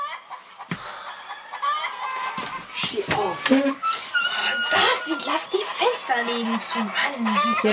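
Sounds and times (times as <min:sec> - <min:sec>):
rooster crowing: 0:00.8 - 0:02.7, 0:04.2 - 0:07.7
speech: 0:02.8 - 0:07.7.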